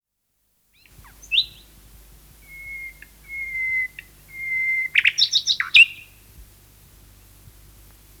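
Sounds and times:
common nightingale singing a varied phrase: 0:00.8 - 0:06.3.

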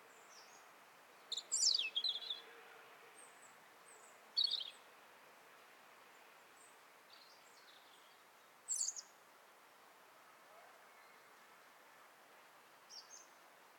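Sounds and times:
background hiss: 0:00.0 - 0:13.7
European robin Erithacus rubecula singing: 0:00.2 - 0:02.4, 0:03.3 - 0:04.8, 0:07.1 - 0:09.1, 0:12.9 - 0:13.4.

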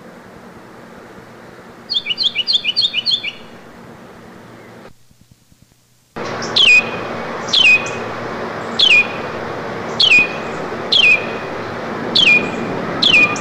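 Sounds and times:
Carolina wren singing repeated phrases: 0:01.9 - 0:03.6, 0:06.2 - 0:13.4.

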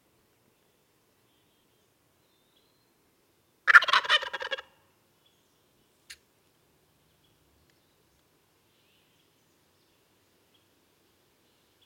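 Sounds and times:
Meleagris gallopavo wild turkey gobbling: 0:03.7 - 0:04.7.

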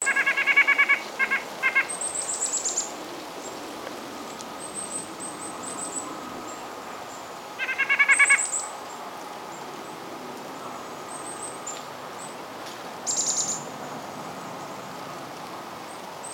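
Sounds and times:
White-breasted nuthatch Sitta carolinensis calling in rapid nasal series: 0:00.0 - 0:02.8, 0:07.6 - 0:08.6.

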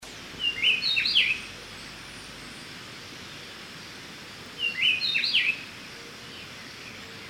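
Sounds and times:
soft hiss: 0:00.0 - 0:07.2
Speckle-breasted wren singing clear, ringing whistled notes: 0:00.4 - 0:01.5, 0:04.6 - 0:05.6.

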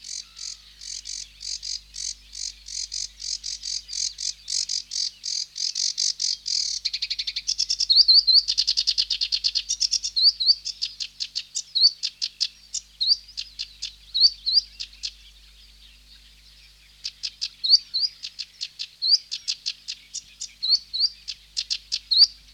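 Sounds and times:
Sedge warbler Acrocephalus schoenobaenus song: 0:00.0 - 0:22.5.

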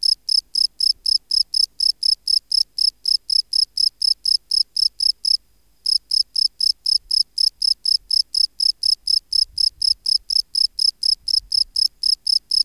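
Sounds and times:
Gryllus campestris field cricket chirping: 0:00.0 - 0:12.6.

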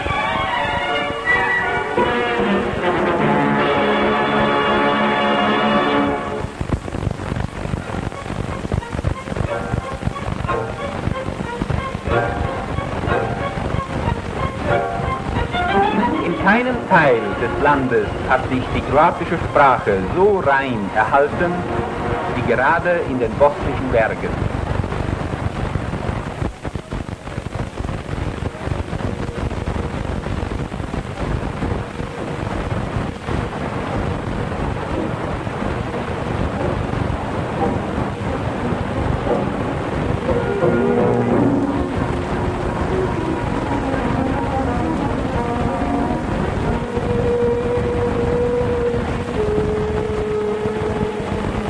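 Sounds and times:
waterfall roaring: 0:00.0 - 0:51.6
speech: 0:17.0 - 0:24.5.

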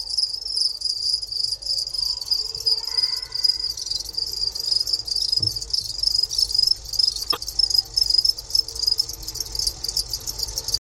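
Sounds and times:
Gryllus bimaculatus two-spotted cricket producing a pulsed trill in a museum in Moscow: 0:00.0 - 0:10.7.

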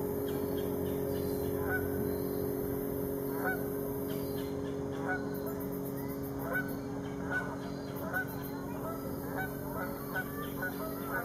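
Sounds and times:
steady hum: 0:00.0 - 0:11.2
goose honks: 0:01.5 - 0:01.9, 0:03.3 - 0:03.7, 0:06.4 - 0:11.2.

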